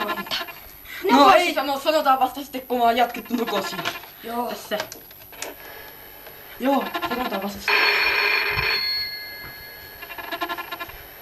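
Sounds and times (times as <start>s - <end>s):
speech: 1.1s - 5.1s, 6.6s - 8.2s
telephone bell ringing: 7.7s - 11.1s.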